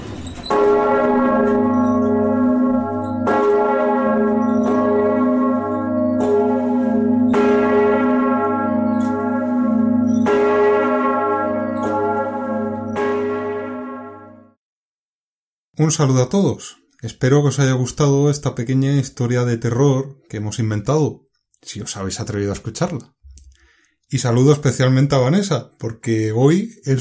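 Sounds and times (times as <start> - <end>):
church bells chiming: 0.4 - 14.6
speech: 15.8 - 23.2, 24.1 - 26.9.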